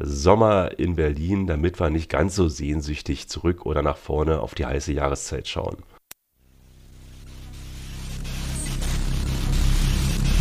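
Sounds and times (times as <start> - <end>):
speech: 0.0 - 6.0
static hiss at a song's intro: 6.4 - 10.3.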